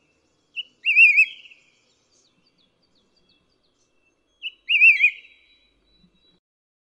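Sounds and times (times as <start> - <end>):
white-whiskered laughingthrush calling: 0.6 - 1.6, 4.4 - 5.8.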